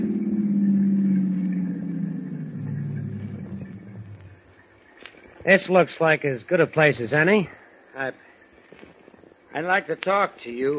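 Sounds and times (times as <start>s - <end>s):
car engine slowing and idling on a deserted stretch of road: 0.0s - 4.6s
speech: 5.5s - 8.2s, 9.6s - 10.7s.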